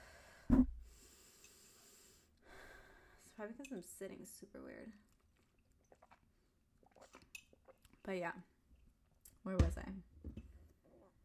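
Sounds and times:
speech: 3.4 - 5.1, 8.1 - 8.5, 9.4 - 10.4
person gulping after a sip of water: 5.3 - 8.0.

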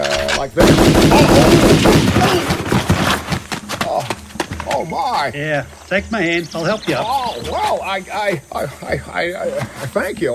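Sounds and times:
gunfire from a very large heavy gun: 0.6 - 3.2
speech: 5.2 - 10.3.

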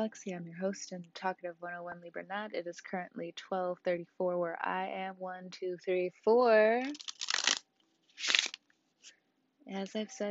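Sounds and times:
speech: 0.0 - 7.2, 9.7 - 10.2
tarot cards being shuffled for a reading: 6.9 - 8.6.

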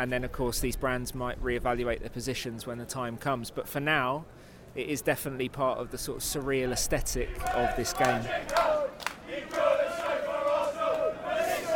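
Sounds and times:
speech: 0.0 - 9.6
large crowd of away football fans chanting in unison before kickoff: 7.2 - 11.7.

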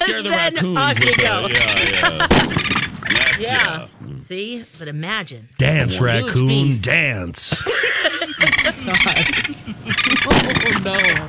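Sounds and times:
laughter: 0.0 - 3.8, 6.0 - 11.2
voices making wordless vocal sounds: 0.0 - 11.2
speech: 0.1 - 11.2
gunshot sound effect of a warning shot fired in the air: 2.3 - 3.2, 10.3 - 10.8.

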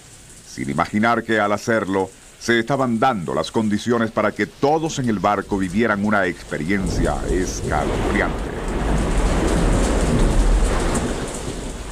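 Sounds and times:
heavy rain pouring in a thunderstorm at sea around a ship: 0.0 - 11.9
speech: 0.6 - 8.6
deep rumble of thunder at sea around a ship: 2.7 - 11.9.

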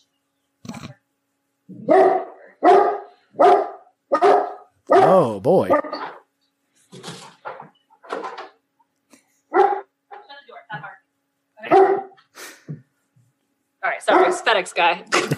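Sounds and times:
female dog barking at a delivery person: 1.8 - 5.1, 9.5 - 9.9, 11.6 - 12.2, 14.0 - 14.6
speech: 5.0 - 6.0, 14.6 - 15.3.

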